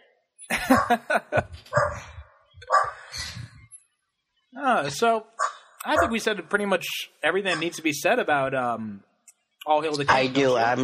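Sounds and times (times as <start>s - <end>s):
laughter: 0.5s - 2.2s, 5.9s - 6.7s
dog barking: 0.6s - 1.1s, 1.7s - 3.1s, 5.4s - 6.3s, 7.5s - 7.8s
speech: 0.6s - 2.0s, 4.6s - 10.8s.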